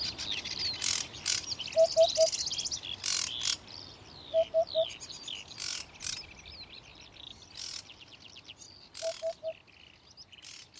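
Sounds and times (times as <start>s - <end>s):
other birds chirping, trilling and whistling: 0.0s - 10.7s
Eurasian Hoopoe courtship song of soft low hoots: 1.7s - 2.4s, 4.3s - 5.0s, 9.0s - 9.6s.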